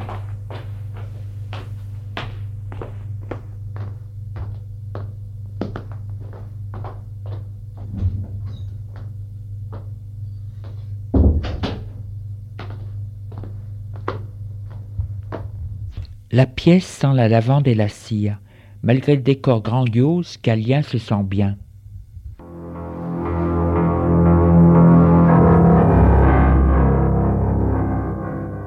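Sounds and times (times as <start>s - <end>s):
man's footsteps going up to his room: 0.0s - 16.3s
low constant hum: 0.0s - 28.6s
speech: 16.3s - 21.6s.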